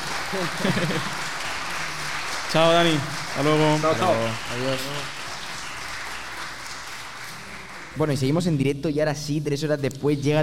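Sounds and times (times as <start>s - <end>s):
applause from a group: 0.0s - 8.5s
speech: 0.3s - 1.3s, 2.5s - 5.2s, 8.0s - 10.4s
person laughing: 0.4s - 1.1s.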